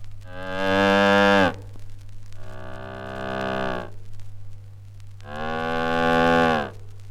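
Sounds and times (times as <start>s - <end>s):
steady low hum: 0.0s - 7.0s
instrument imitating a cow mooing: 0.3s - 1.6s, 2.4s - 4.0s, 5.2s - 6.8s.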